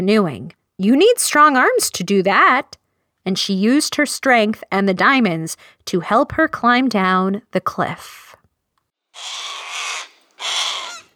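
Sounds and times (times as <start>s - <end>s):
speech: 0.0s - 8.2s
giant bird cawing while flying toward a person: 9.2s - 11.1s.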